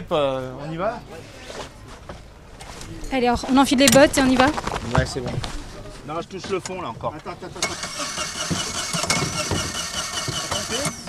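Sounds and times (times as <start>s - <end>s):
speech: 0.1s - 1.7s, 2.9s - 8.6s
cold boat motor cranking and sputtering into life: 7.6s - 11.0s.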